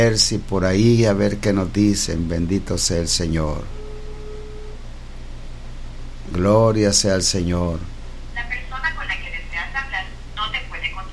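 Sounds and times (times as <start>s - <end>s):
speech: 0.0s - 3.8s, 6.3s - 8.0s
steady low hum on a telephone line: 0.0s - 11.1s
recorded no-service message voice over a telephone line: 8.4s - 11.1s.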